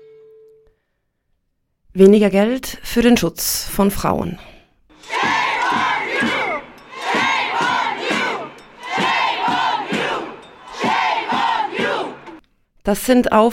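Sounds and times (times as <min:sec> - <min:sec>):
speech: 0:02.0 - 0:04.5, 0:12.8 - 0:13.5
large protest crowd chanting in unison on a square: 0:05.0 - 0:12.4.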